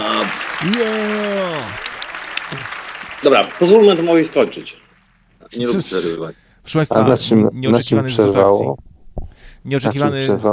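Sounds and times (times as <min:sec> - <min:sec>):
audience applause at a live battle-style event: 0:00.0 - 0:05.4
speech: 0:00.3 - 0:01.9, 0:03.2 - 0:04.8, 0:05.5 - 0:08.9, 0:09.6 - 0:10.5.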